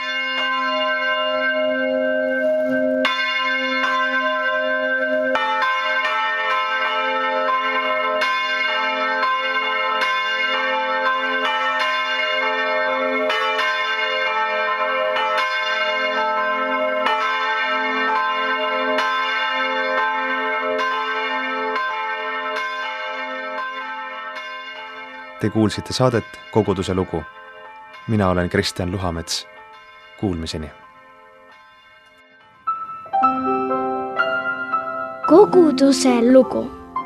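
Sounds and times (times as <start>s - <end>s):
newly installed church tower bells ringing at noon: 0.0s - 37.0s
speech: 25.4s - 27.4s, 28.1s - 29.5s, 30.2s - 30.8s, 35.5s - 36.8s.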